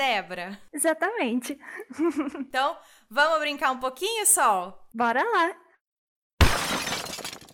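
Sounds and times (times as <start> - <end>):
speech: 0.0 - 5.6
laughter: 1.7 - 2.5
ice breaking sound effect: 6.4 - 7.5.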